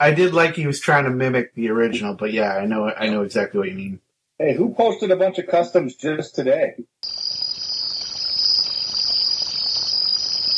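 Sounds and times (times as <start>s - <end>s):
speech: 0.0s - 7.0s
cricket chorus trilling: 7.0s - 10.5s.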